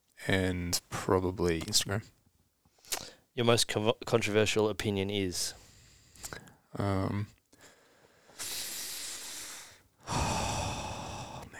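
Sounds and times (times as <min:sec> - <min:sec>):
speech: 0:00.2 - 0:02.2, 0:03.4 - 0:05.6, 0:06.2 - 0:07.4
person taking a big deep breath: 0:07.6 - 0:11.5
voiced snort-like sound: 0:10.1 - 0:11.5.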